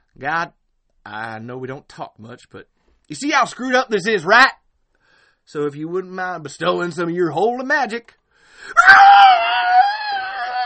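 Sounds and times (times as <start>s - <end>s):
speech: 0.2s - 4.6s, 5.5s - 9.4s
high-pitched creature shriek: 8.8s - 10.6s.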